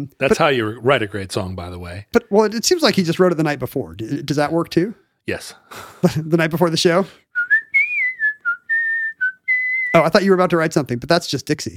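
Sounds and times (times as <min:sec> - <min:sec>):
speech: 0:00.0 - 0:07.2, 0:10.0 - 0:11.7
person whistling a short melodic tune: 0:07.3 - 0:10.0.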